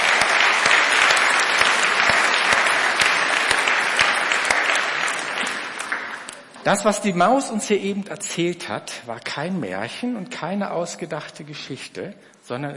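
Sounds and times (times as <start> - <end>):
audience applause: 0.0 - 6.5
speech: 6.6 - 12.7.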